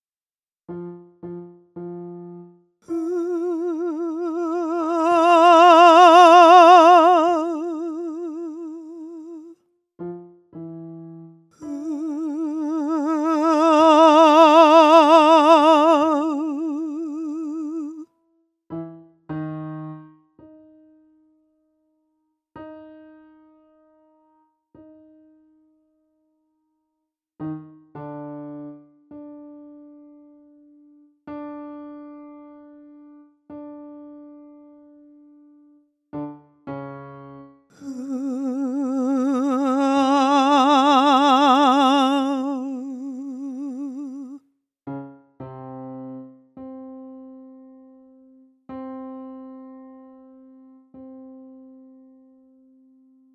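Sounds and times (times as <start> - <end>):
voice in a practice mix: 2.9 - 9.5, 11.6 - 18.0, 37.8 - 44.4.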